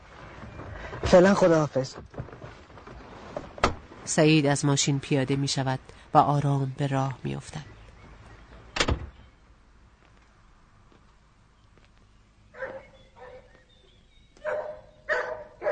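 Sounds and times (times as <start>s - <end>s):
speech: 1.0s - 2.2s, 4.1s - 7.7s
dog barking: 12.6s - 13.6s, 14.4s - 15.7s.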